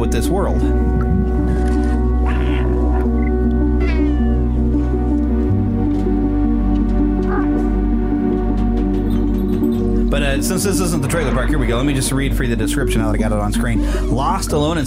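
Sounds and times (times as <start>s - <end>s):
low ambient musical drones: 0.0s - 14.8s
speech: 0.2s - 1.7s, 10.2s - 14.8s
cat meowing in a video game trailer: 2.2s - 3.2s, 3.8s - 4.7s.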